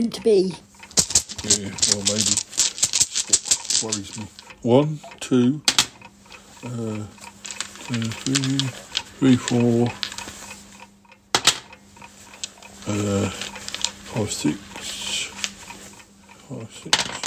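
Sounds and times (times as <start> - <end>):
speech: 0.0 - 0.7, 1.4 - 2.5, 3.3 - 5.7, 6.6 - 7.2, 7.9 - 10.1, 12.9 - 13.4, 14.1 - 14.7, 16.5 - 17.2
person counting: 0.0 - 10.9, 11.5 - 17.2
dice rattling and clattering: 0.9 - 4.6, 6.6 - 10.4, 12.4 - 14.6.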